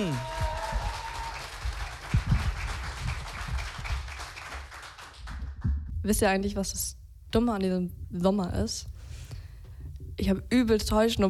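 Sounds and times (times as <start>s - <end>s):
audience applause welcoming a performer: 0.0s - 5.6s
speech: 6.1s - 8.9s, 10.2s - 11.2s.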